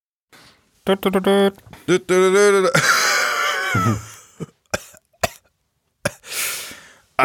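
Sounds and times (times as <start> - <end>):
speech: 0.8 - 2.9, 3.7 - 4.5
harsh rasping coughs: 4.7 - 6.3.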